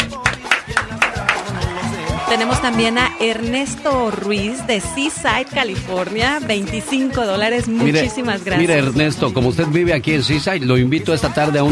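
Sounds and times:
crisp claps: 0.0 - 1.6
speech: 2.3 - 11.7.

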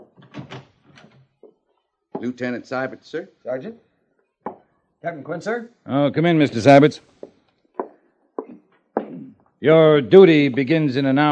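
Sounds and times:
door shutting with a firm knock: 0.0 - 1.3
door opening with a rattling scrape: 0.2 - 1.3
speech: 2.2 - 3.9, 5.0 - 7.1, 9.6 - 11.2.

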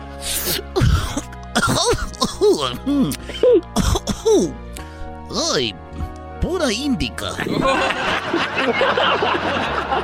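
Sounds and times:
person faking raspy coughs imitating coughing from smoking marijuana: 0.3 - 4.6
speech: 1.8 - 4.6, 5.3 - 5.8, 6.4 - 10.0
laughter: 7.3 - 10.0.

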